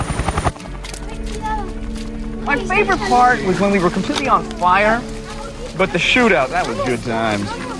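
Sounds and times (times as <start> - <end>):
helicopter rotor thumping: 0.0 - 3.3
speech: 2.5 - 5.2, 5.8 - 7.7.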